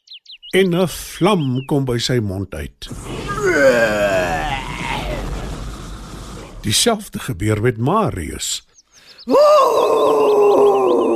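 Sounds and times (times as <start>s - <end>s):
speech: 0.5s - 4.1s, 6.6s - 11.1s
person voicing a father giant roaring: 3.2s - 5.5s, 9.3s - 11.1s.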